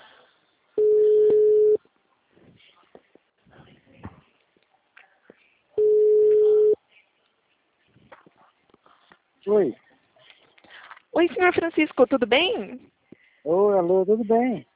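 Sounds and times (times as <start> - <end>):
outgoing telephone call ringing tone: 0.8 - 1.8, 5.8 - 6.8
speech: 9.6 - 9.8, 11.2 - 14.7.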